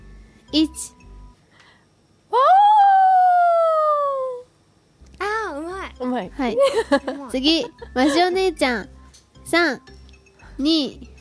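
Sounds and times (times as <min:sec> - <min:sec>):
speech: 0:00.5 - 0:01.0, 0:06.0 - 0:10.0, 0:10.6 - 0:11.1
person imitating a dog howling: 0:02.3 - 0:04.5.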